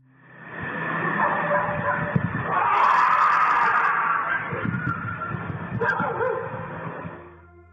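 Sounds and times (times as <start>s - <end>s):
whining tones: 0.0s - 7.7s
several dogs barking and yipping: 1.2s - 2.2s, 4.2s - 6.7s.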